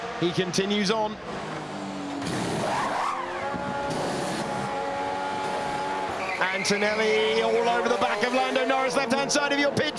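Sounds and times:
Formula One Ferrari race car engine whine coming into the pits: 0.0 - 9.9
speech: 0.2 - 1.6, 6.4 - 9.9.

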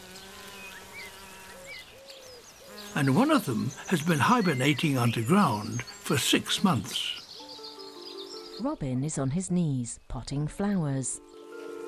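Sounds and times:
wild bees buzzing in a garden: 0.0 - 8.7, 11.3 - 11.8
speech: 3.0 - 7.2, 8.6 - 11.4.

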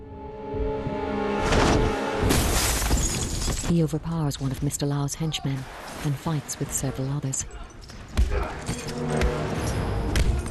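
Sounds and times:
steady musical score: 0.0 - 2.8, 6.0 - 10.5
glass window smashing: 2.3 - 3.7
speech: 3.7 - 9.3.

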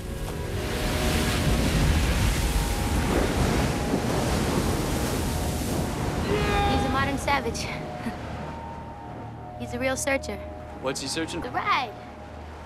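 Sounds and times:
wind rushing across the microphone: 0.0 - 9.5
ocean waves crashing: 0.0 - 12.6
speech: 7.4 - 7.8, 9.6 - 12.0.

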